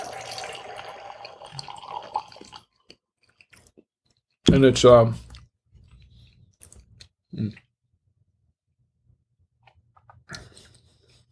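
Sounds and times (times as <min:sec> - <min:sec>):
wine pouring into a glass: 0:00.0 - 0:02.7
speech: 0:04.5 - 0:05.2.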